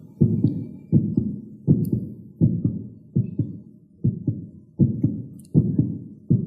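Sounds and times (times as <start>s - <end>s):
heartbeat as low lub-dub double thumps: 0.0s - 6.4s.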